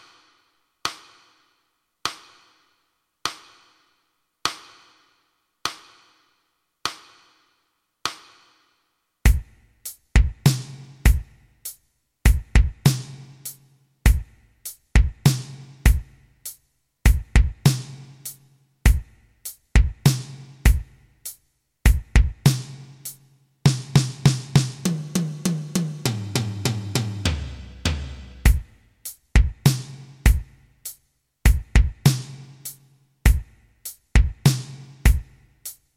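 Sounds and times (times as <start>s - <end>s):
rock rhythm: 9.3s - 35.8s.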